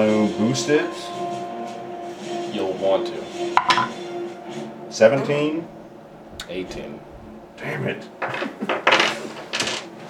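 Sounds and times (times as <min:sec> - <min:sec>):
speech: 0:00.3 - 0:01.3, 0:02.5 - 0:04.1, 0:04.9 - 0:05.8, 0:06.5 - 0:09.4
dice rolling across a hard tabletop: 0:08.3 - 0:09.9.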